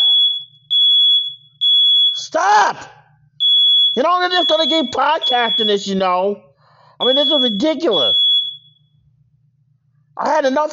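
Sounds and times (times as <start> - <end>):
smoke alarm beeping: 0.0 - 2.3, 3.4 - 9.1
speech: 2.3 - 3.0, 4.0 - 8.2, 10.2 - 10.7.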